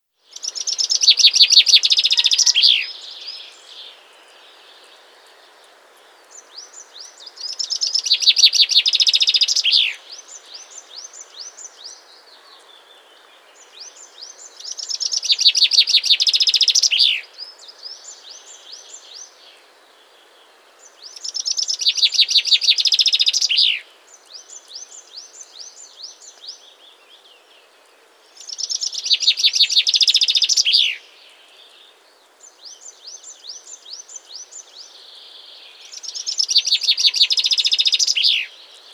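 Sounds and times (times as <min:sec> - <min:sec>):
chaffinch birdsong: 0:00.3 - 0:05.4, 0:06.0 - 0:19.6, 0:20.2 - 0:38.9.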